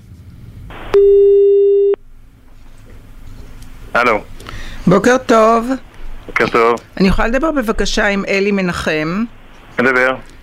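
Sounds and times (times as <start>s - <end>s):
speech: 1.0s - 1.3s, 4.0s - 4.3s, 4.9s - 10.3s
telephone call ring tone on the line: 1.0s - 2.0s.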